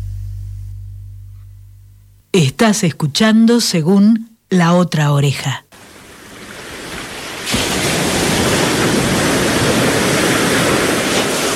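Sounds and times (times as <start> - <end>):
speech: 2.3 - 5.6
ocean waves on a beach at Mar del Plata: 5.7 - 11.5.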